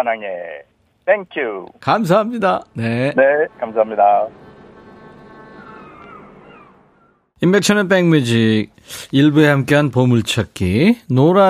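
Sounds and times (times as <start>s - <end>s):
speech: 0.0s - 4.4s, 7.4s - 11.4s
elephant trumpeting: 5.3s - 7.2s.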